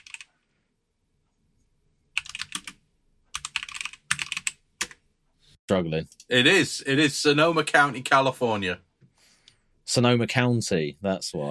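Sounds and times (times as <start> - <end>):
computer keyboard typing: 0.0 - 0.3, 2.2 - 5.0
speech: 5.7 - 8.9, 9.9 - 11.4.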